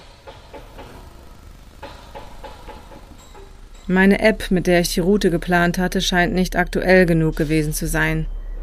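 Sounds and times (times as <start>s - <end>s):
metallic knocks and clanks: 0.0s - 5.0s
idling engine: 0.0s - 7.3s
speech: 3.9s - 8.4s.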